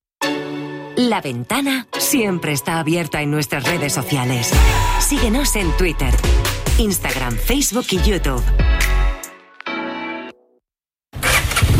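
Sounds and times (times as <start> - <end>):
speech: 1.0 - 9.0
Honda Forza 125 motor scooter starter whirring: 11.2 - 11.7.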